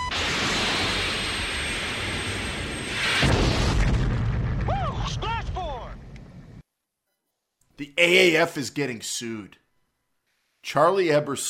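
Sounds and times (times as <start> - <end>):
missile launch roaring rush after target lock: 0.0 - 6.1
heavy booming missile explosion: 0.0 - 6.6
speech: 7.8 - 9.6, 10.6 - 11.4.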